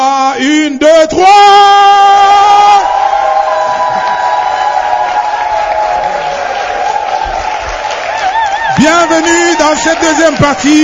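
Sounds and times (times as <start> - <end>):
speech: 0.4 - 1.8, 9.0 - 10.8
large audience clapping: 2.8 - 10.8.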